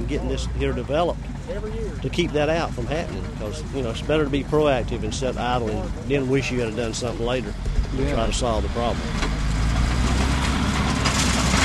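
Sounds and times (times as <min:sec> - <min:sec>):
giant yellow dump truck engines rumbling: 0:00.0 - 0:11.6
speech: 0:00.1 - 0:09.4.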